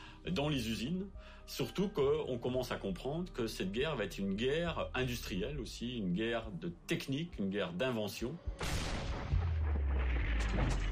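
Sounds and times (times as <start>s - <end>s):
speech: 0.2s - 8.8s
heavy artillery guns firing concentrated barrages: 8.6s - 10.8s.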